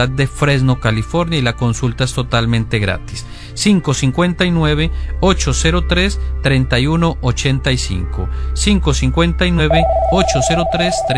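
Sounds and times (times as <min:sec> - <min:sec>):
speech: 0:00.0 - 0:11.1
telephone ringing with an incoming call: 0:09.6 - 0:11.1.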